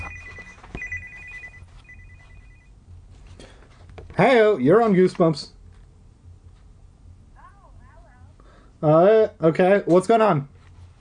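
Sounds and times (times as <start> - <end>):
telephone ringing with an electronic trilling tone: 0.0 - 2.8
speech: 4.2 - 5.6, 8.8 - 10.6.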